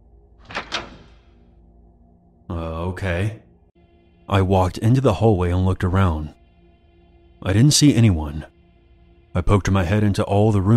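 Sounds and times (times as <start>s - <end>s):
door latch clicking: 0.4s - 1.2s
speech: 2.6s - 3.4s, 4.3s - 6.4s, 7.4s - 8.5s, 9.3s - 10.7s.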